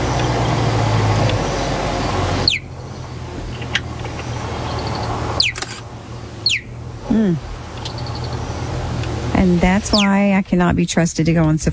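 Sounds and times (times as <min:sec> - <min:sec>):
low steady rumble: 0:00.0 - 0:11.7
cheetah chirping: 0:01.3 - 0:10.3
speech: 0:07.2 - 0:07.5, 0:09.4 - 0:11.7.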